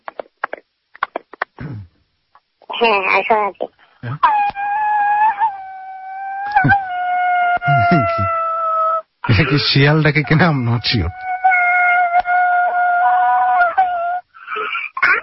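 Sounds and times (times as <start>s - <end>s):
speech: 2.8s - 4.8s, 7.9s - 8.4s, 9.3s - 11.3s
man imitating the wailing cry of a weeping bride: 4.2s - 14.3s.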